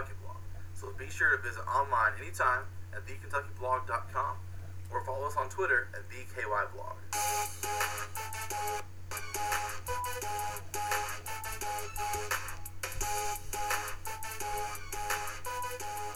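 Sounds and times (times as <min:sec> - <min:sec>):
speech: 0:00.9 - 0:09.6
instrumental intro music with bright melodic notes, low drone and beat: 0:07.1 - 0:16.1.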